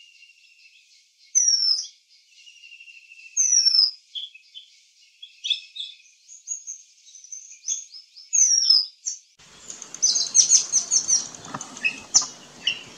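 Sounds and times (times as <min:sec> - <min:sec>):
Oriental magpie-robin song: 0:00.0 - 0:12.9
background hiss: 0:09.4 - 0:12.9.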